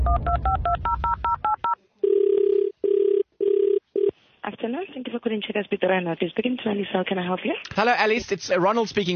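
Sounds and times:
telephone ringing tone heard down the line: 0.1s - 4.1s
speech: 5.3s - 9.1s.

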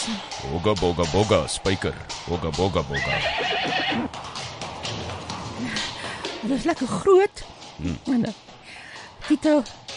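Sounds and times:
speech: 0.1s - 4.2s, 6.5s - 8.5s, 9.3s - 9.8s
horse neighing: 2.9s - 4.2s.

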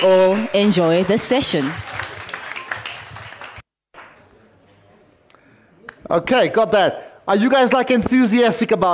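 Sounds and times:
speech: 0.0s - 1.9s, 6.1s - 8.9s
audience crowd clapping and applauding: 0.0s - 4.2s.

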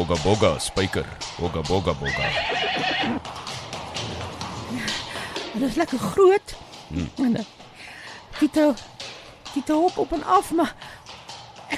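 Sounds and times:
speech: 0.0s - 3.5s, 5.6s - 7.6s, 8.4s - 8.9s, 9.5s - 10.9s
horse hooves clip-clopping: 0.0s - 11.7s
horses neighing: 2.0s - 3.4s.

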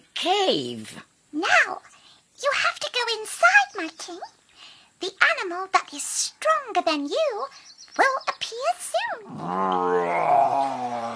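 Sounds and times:
speech: 0.2s - 4.4s, 5.0s - 11.1s
voice imitating a lion's rumbling growl: 9.2s - 11.1s.

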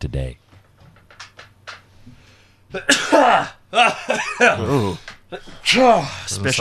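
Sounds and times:
speech: 0.0s - 0.4s, 2.7s - 6.5s
quiet small clicks and rustles: 0.4s - 2.2s
person sneezing: 2.8s - 3.6s, 4.4s - 5.5s.

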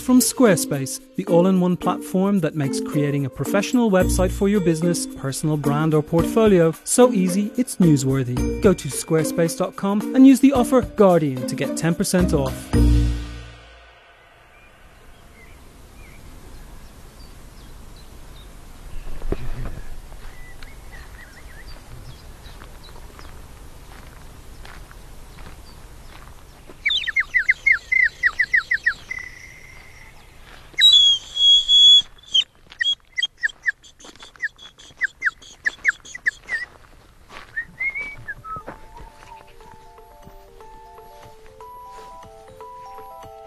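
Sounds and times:
speech: 0.0s - 13.0s
birdsong in the Kent countryside: 14.5s - 36.9s, 37.5s - 43.4s
person whistling in imitation of birds: 26.8s - 29.8s, 30.8s - 36.8s, 37.5s - 39.5s.

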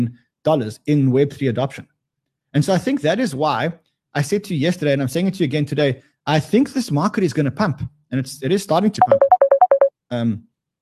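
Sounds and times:
speech: 0.0s - 1.9s, 2.5s - 9.3s, 10.1s - 10.5s
phone ringing with electronic beeps for an incoming call: 9.0s - 9.9s.

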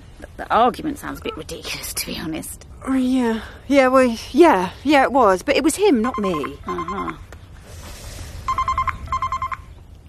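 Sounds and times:
speech: 0.2s - 7.3s
telephone ringing with a trilling electronic tone: 6.1s - 7.1s, 8.5s - 9.7s.

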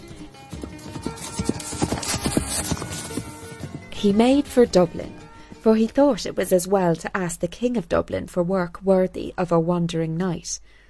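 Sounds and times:
horse hooves galloping on hard ground: 0.0s - 5.1s
speech: 4.0s - 10.8s.

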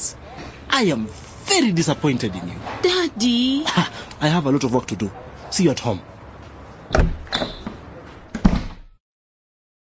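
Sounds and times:
speech: 0.8s - 6.2s, 6.9s - 7.2s
wooden door banging shut: 6.9s - 9.0s.

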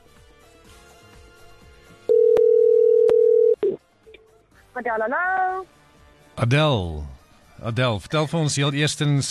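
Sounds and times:
electronic telephone ringing tone: 2.1s - 3.8s
speech: 4.8s - 5.8s, 6.4s - 9.2s.

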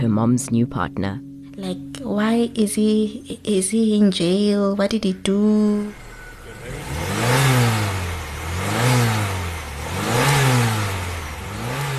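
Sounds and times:
speech: 0.1s - 6.0s
car engine revving with a rough throaty tone: 5.6s - 11.9s.

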